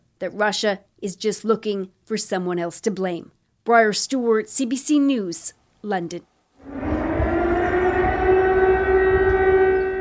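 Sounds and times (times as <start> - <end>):
speech: 0.2 - 6.9
air raid siren wailing: 6.6 - 9.9
low rumbling din: 6.6 - 9.9.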